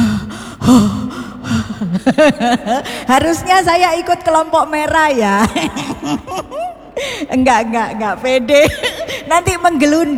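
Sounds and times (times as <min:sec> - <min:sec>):
person taking deep audible breaths: 0:00.0 - 0:02.1
speech: 0:00.7 - 0:01.0, 0:01.8 - 0:10.1
laughter: 0:01.8 - 0:03.4, 0:05.2 - 0:06.9.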